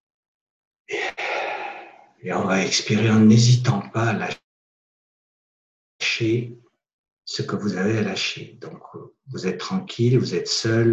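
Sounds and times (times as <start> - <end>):
deep inhalation during a relaxation exercise: 0.9 - 2.1
speech: 2.2 - 4.4, 6.2 - 6.6, 7.3 - 10.9.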